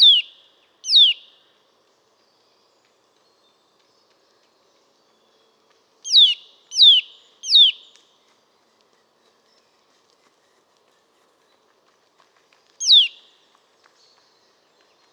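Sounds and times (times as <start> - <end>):
Eurasian nuthatch Sitta europaea tuit calls: 6.1 - 7.8, 12.8 - 13.2.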